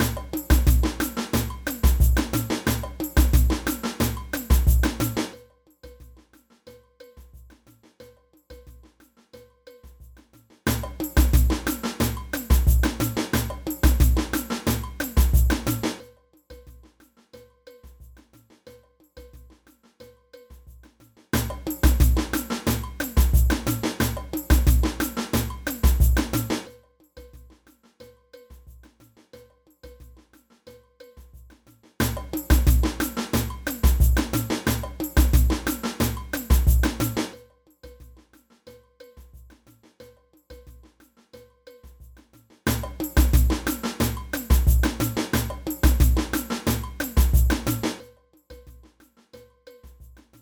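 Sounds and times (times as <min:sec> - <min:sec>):
samba band playing: 0:00.0 - 0:05.3, 0:10.7 - 0:16.0, 0:21.4 - 0:26.7, 0:32.0 - 0:37.3, 0:42.7 - 0:48.0
cowbell in a samba band: 0:00.0 - 0:50.3.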